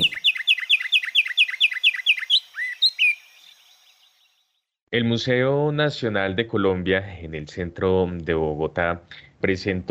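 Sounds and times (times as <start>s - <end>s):
Colombian finch singing a rapid trill: 0.0s - 4.2s
speech: 4.9s - 9.9s.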